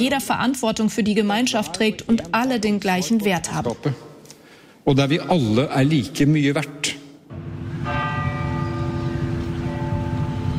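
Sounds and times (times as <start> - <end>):
speech: 0.0 - 4.1, 4.8 - 7.0
church bells ringing: 7.3 - 10.5.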